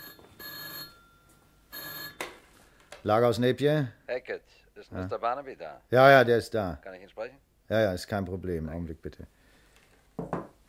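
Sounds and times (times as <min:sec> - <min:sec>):
telephone electric bell ringing in a night watchman's office: 0:00.0 - 0:02.3
speech: 0:03.0 - 0:09.4.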